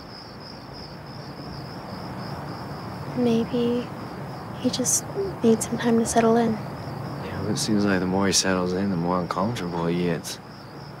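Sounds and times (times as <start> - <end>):
cicadas buzzing: 0.0 - 10.9
soft low rumble of outdoor ambience: 2.1 - 10.9
speech: 3.2 - 4.0, 4.6 - 6.7, 7.5 - 10.4.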